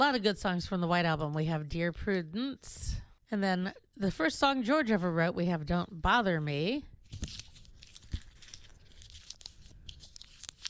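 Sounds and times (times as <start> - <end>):
speech: 0.0 - 7.4
paper being crumpled into small balls: 7.0 - 10.6.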